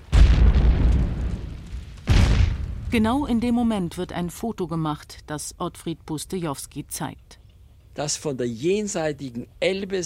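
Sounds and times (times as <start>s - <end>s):
deep rumbling explosions with long tail: 0.0s - 4.6s
speech: 2.9s - 7.4s, 8.0s - 10.0s.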